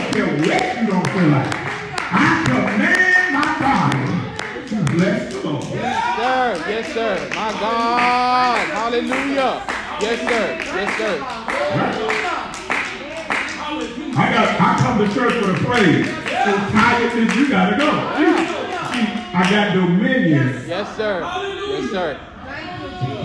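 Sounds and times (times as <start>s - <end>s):
group clapping hands in a steady rhythm: 0.0s - 19.8s
speech: 0.1s - 3.0s, 5.0s - 12.4s, 14.2s - 23.2s.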